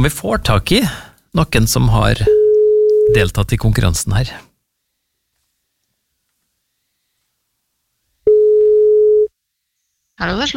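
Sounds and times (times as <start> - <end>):
speech: 0.0 - 2.4, 3.1 - 4.5, 10.2 - 10.5
electronic telephone ringback tone of an outgoing call: 2.3 - 3.2, 8.3 - 9.3.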